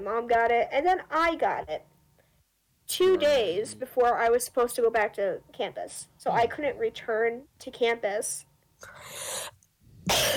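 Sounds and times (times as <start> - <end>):
speech: 0.0 - 1.9, 2.9 - 9.5
person sneezing: 8.9 - 10.3.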